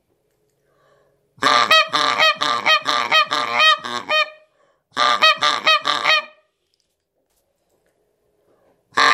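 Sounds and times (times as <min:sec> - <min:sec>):
Canada goose honking: 0:01.4 - 0:04.4, 0:05.0 - 0:06.4.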